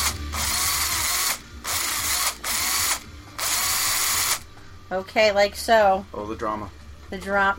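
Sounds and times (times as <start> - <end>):
power drill boring through a baked potato: 0.0 - 4.4
speech: 4.9 - 7.5.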